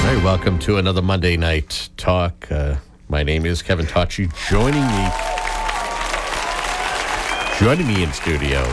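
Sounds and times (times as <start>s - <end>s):
speech: 0.1s - 5.3s, 7.6s - 8.7s
studio audience applause at an evening talk show: 4.3s - 8.7s.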